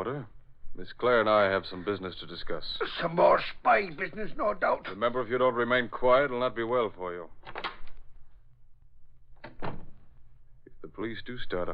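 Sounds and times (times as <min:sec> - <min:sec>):
speech: 0:00.8 - 0:07.4, 0:11.0 - 0:11.7
door opening with clunk and rattling scrape: 0:07.4 - 0:08.0, 0:09.4 - 0:10.1.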